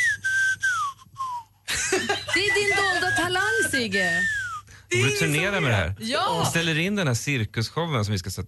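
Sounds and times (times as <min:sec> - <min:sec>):
person whistling through a gap in teeth: 0:00.0 - 0:01.6, 0:02.6 - 0:04.9
laughter: 0:01.7 - 0:03.9
speech: 0:01.9 - 0:08.4.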